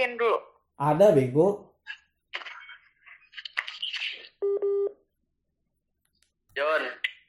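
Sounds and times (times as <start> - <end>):
speech: 0.0 - 2.0
electronic phone dialing tones: 4.4 - 5.0.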